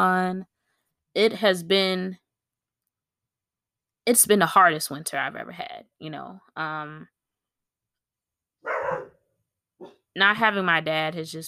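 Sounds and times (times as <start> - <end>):
speech: 0.0 - 0.5, 1.2 - 2.2, 4.0 - 7.1, 9.8 - 11.4
pet dog barking: 8.6 - 9.2.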